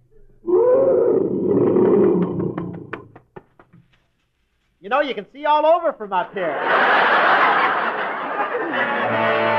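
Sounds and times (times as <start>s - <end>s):
lion roaring: 0.4s - 3.0s
speech: 4.9s - 7.5s
laughter: 6.3s - 9.5s.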